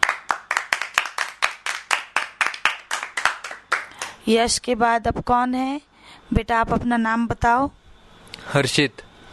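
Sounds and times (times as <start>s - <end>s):
group of children clapping in a steady brisk rhythm: 0.0s - 4.2s
speech: 4.2s - 7.8s, 8.4s - 9.1s.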